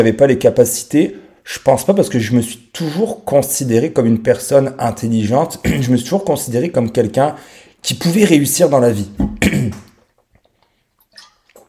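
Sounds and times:
speech: 0.0s - 9.9s
sipping water: 9.2s - 11.6s
swallowing and mouth sounds: 9.2s - 11.6s.

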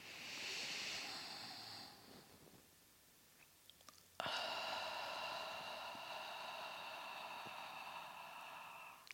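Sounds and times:
slow deep breathing in and out: 0.0s - 2.4s, 4.2s - 9.1s.

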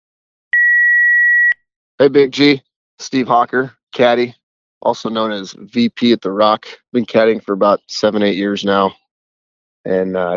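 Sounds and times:
voicemail answering machine beep: 0.6s - 1.6s
speech: 2.0s - 9.0s, 9.8s - 10.3s.

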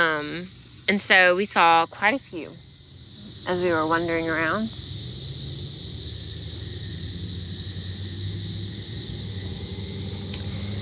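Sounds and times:
thin high insect-like buzz: 0.0s - 10.7s
speech: 0.2s - 2.7s, 3.4s - 4.8s
cars driving by outdoors: 5.4s - 10.7s.

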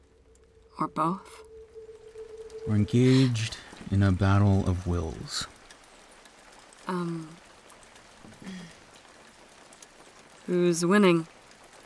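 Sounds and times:
low tonal sound: 0.0s - 7.2s
soft steady rain: 0.0s - 11.8s
speech: 0.8s - 1.5s, 2.6s - 5.6s, 6.9s - 7.4s, 8.4s - 8.8s, 10.5s - 11.4s.

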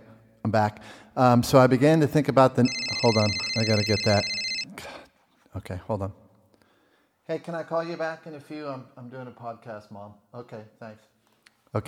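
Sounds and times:
speech: 0.5s - 4.9s, 5.6s - 6.2s, 7.3s - 11.1s
phone text message alert tone: 2.6s - 4.7s.

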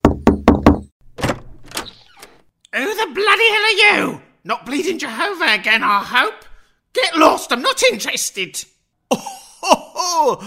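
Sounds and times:
knocking on a door: 0.0s - 1.4s
speech: 3.1s - 10.4s.

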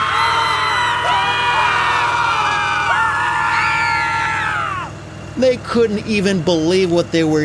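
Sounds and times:
crowd of children and adults screaming: 0.0s - 5.0s
speech: 5.7s - 7.4s.

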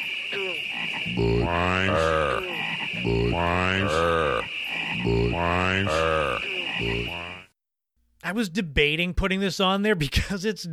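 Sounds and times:
high-pitched hum of night ambience: 0.0s - 7.4s
frogs croaking in a beer commercial: 0.0s - 7.5s
speech: 0.3s - 4.2s, 8.3s - 10.7s.

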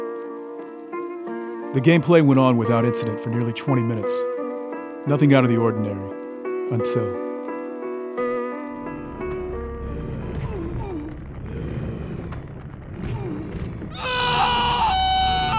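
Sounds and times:
speech: 1.7s - 4.3s, 5.0s - 7.3s
steady low rumble: 8.7s - 14.1s
sudden shrill scream: 13.9s - 15.5s.

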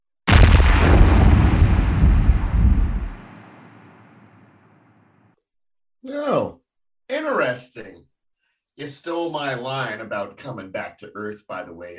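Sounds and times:
explosion sound effect with deep rumbling roar: 0.3s - 5.1s
speech: 7.6s - 8.1s, 8.8s - 11.9s.

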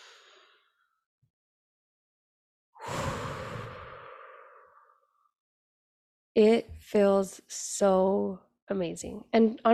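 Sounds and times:
deep breath during a relaxation exercise: 0.0s - 0.9s, 2.8s - 5.3s
speech: 6.4s - 9.7s.

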